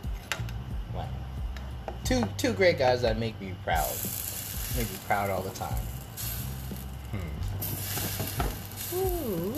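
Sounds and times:
pot of greens boiling over on a gas stovetop: 0.0s - 9.5s
speech: 2.1s - 6.0s, 8.9s - 9.5s
short vocal murmur: 7.1s - 7.6s, 8.9s - 9.5s.

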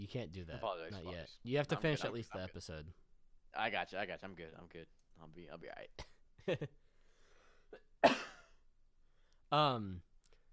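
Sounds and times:
speech: 0.1s - 6.8s, 9.5s - 10.1s
person coughing: 7.7s - 8.6s.

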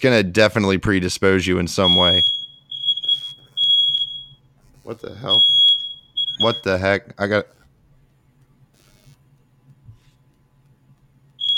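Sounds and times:
speech: 0.0s - 2.4s, 4.8s - 5.6s, 6.4s - 7.6s
smoke alarm beeping at home: 1.8s - 6.8s, 11.4s - 11.5s.

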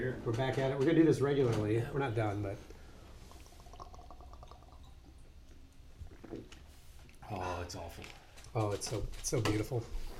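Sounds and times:
speech: 0.0s - 2.7s, 7.3s - 10.1s
tequila-flavored liquor pouring into a glass: 2.9s - 6.5s.

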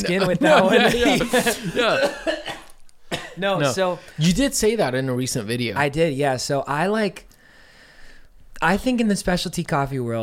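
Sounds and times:
laughter: 0.0s - 2.6s
speech: 0.0s - 2.6s, 3.4s - 7.3s, 8.6s - 10.2s
short throaty coughs with throat-clearing: 0.7s - 3.8s.

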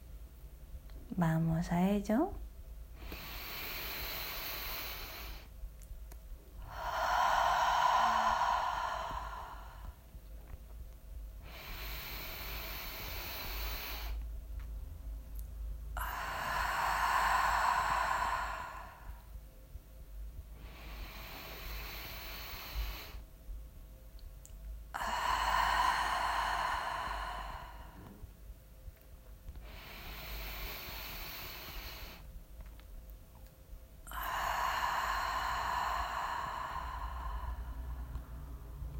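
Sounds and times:
speech: 1.2s - 2.4s
deep breaths through nose and mouth: 2.9s - 5.6s, 6.5s - 10.6s, 11.3s - 14.3s, 15.9s - 19.6s, 20.4s - 23.3s, 24.9s - 28.6s, 29.5s - 32.4s, 34.0s - 38.9s.

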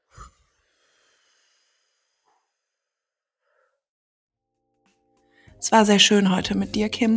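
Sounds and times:
deep breath into the belly and exhale through the mouth: 0.0s - 2.8s
speech: 5.6s - 7.1s.

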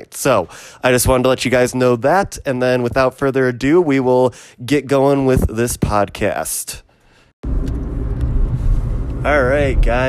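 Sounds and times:
speech: 0.0s - 6.8s, 7.4s - 7.8s, 9.2s - 10.0s
car interior engine rumble while driving: 7.4s - 10.0s.

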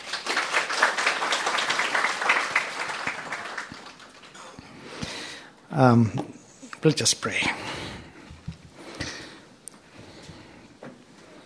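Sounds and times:
audience applause: 0.0s - 4.6s
speech: 5.8s - 7.8s.

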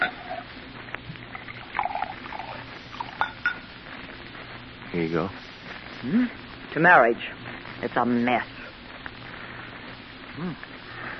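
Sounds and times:
bourbon being poured into a glass: 1.4s - 3.6s
small glassy clinks and taps: 3.1s - 3.6s
speech: 5.0s - 8.6s, 10.4s - 10.7s.

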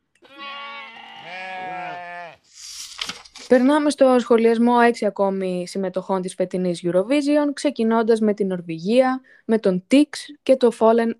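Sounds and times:
sheep bleating in a national park: 0.2s - 2.5s
speech: 3.5s - 11.1s.

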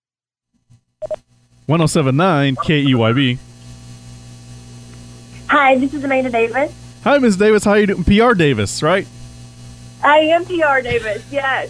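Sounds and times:
speech: 1.0s - 3.5s, 5.7s - 9.2s, 10.0s - 11.6s
short electronic telephone tones beeping: 2.6s - 3.3s.

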